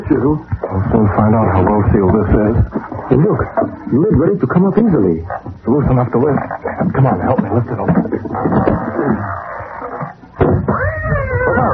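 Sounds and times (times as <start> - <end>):
busy rumbling background: 0.0 - 11.7
speech: 0.1 - 9.3
cat meowing: 10.7 - 11.7.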